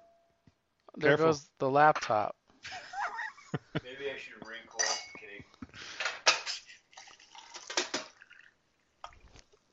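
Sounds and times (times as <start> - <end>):
speech: 1.0 - 2.8
laughter: 2.7 - 4.5
ceramic teacup clink: 4.8 - 5.3
hot water pouring into a teacup: 6.7 - 9.4.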